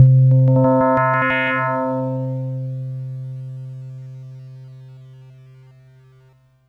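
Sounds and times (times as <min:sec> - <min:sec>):
Yamaha PSS-170 hand bell note C3: 0:00.0 - 0:04.0.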